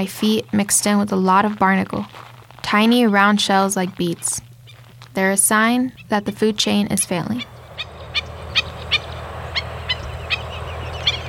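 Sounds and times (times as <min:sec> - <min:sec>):
speech: 0:00.0 - 0:04.5, 0:05.2 - 0:07.9
wind along the shore: 0:00.0 - 0:11.2
birds calling by the sea: 0:05.9 - 0:11.2
surf roaring along the shore: 0:07.4 - 0:11.2.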